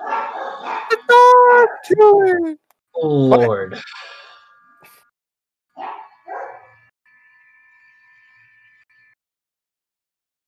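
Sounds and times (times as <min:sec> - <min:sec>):
dog barking: 0:00.0 - 0:01.1, 0:05.8 - 0:06.8
speech: 0:01.8 - 0:04.0.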